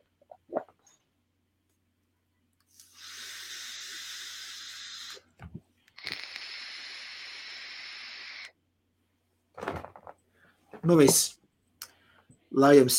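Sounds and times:
hissing exhales of vape vapor: 2.7s - 8.6s
speech: 10.9s - 11.4s, 12.6s - 12.9s.

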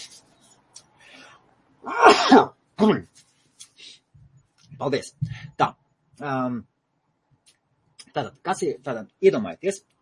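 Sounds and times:
person sneezing: 1.8s - 2.5s
speech: 1.8s - 3.1s, 4.8s - 6.7s, 8.2s - 9.9s.

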